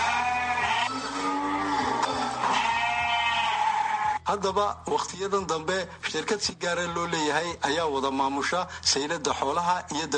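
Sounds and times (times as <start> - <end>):
sheep and goats bleating at a livestock market in Djibouti: 0.0 - 4.2, 6.8 - 7.4
speech: 4.3 - 10.1.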